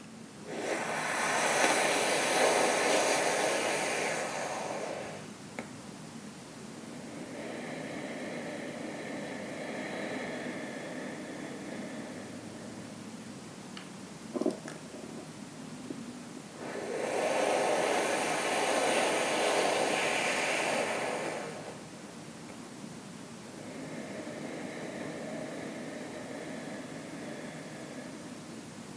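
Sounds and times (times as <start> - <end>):
deep slow breathing during a breathwork exercise: 0.0 - 5.3, 6.8 - 13.0, 16.5 - 21.9, 23.5 - 28.9.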